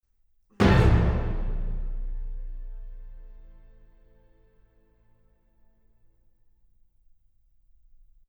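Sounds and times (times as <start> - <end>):
orchestra playing a final chord: 0.6 - 4.5.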